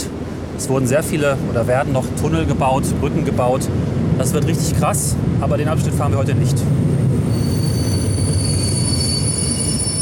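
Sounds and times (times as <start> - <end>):
speech: 0.6 - 7.0
regional passenger train pulling into a station, wheels and running gear rumbling: 5.7 - 9.9
high-pitched train wheel squeal: 7.2 - 9.9.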